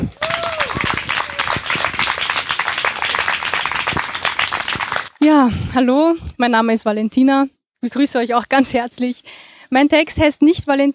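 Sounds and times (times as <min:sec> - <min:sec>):
audience applause for a poetry slammer: 0:00.0 - 0:05.2
speech: 0:05.2 - 0:10.9.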